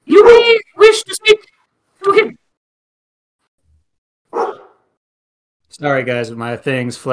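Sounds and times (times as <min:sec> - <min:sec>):
person imitating a dog bark: 0:00.1 - 0:00.9, 0:04.4 - 0:04.8
speech: 0:00.3 - 0:01.4, 0:05.8 - 0:07.1.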